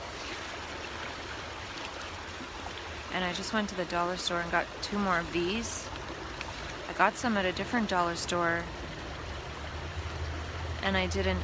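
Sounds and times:
flowing river water: 0.0s - 11.4s
speech: 3.1s - 5.9s, 7.0s - 8.8s, 10.8s - 11.4s.

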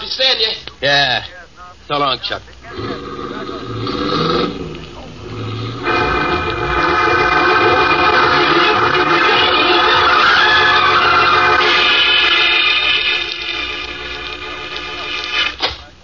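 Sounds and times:
speech: 0.1s - 3.0s
droning horn-like tone: 5.2s - 15.6s
freight train running on tracks: 5.2s - 15.6s.

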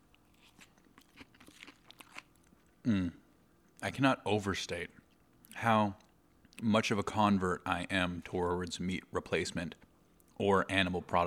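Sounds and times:
crisp crunching of romaine lettuce being chewed: 0.0s - 2.8s
speech: 2.8s - 3.2s, 3.8s - 5.0s, 5.6s - 6.0s, 6.6s - 9.8s, 10.4s - 11.2s.

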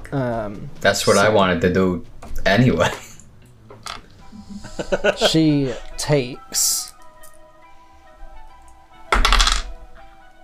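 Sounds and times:
speech: 0.1s - 3.0s, 4.8s - 6.9s
laughter: 4.3s - 5.9s
dice tumbling onto a hard tabletop: 9.2s - 9.8s.

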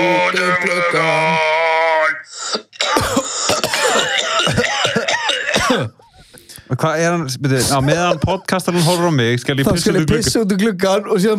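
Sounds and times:
speech: 0.0s - 1.5s, 6.7s - 11.3s
man coughing: 2.6s - 6.3s.

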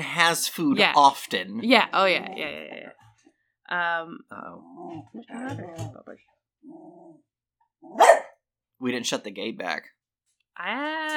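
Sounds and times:
speech: 0.1s - 3.0s, 3.7s - 10.0s, 10.6s - 11.1s
dog throaty growling vocalizations: 2.0s - 3.0s, 4.4s - 8.2s
dog barking: 7.9s - 8.4s.

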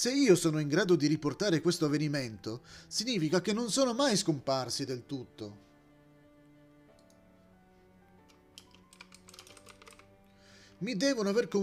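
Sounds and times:
speech: 0.0s - 5.6s, 10.8s - 11.6s
typing on a computer keyboard: 8.3s - 10.1s.

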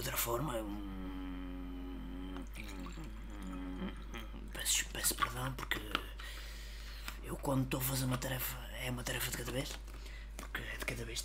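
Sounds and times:
speech: 0.0s - 1.0s, 4.6s - 6.4s, 7.2s - 11.2s
steady low tonal hum: 0.0s - 6.0s
person sipping and swallowing water: 0.5s - 7.5s.

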